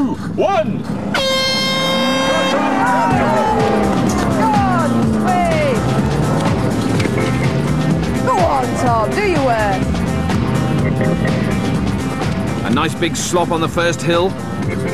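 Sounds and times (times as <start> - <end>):
speech: 0.2 - 1.4, 12.8 - 14.9
farm vehicle engine revving while driven hard and braked: 0.8 - 13.6
klaxon blast: 1.0 - 12.0
people shouting: 1.8 - 6.2.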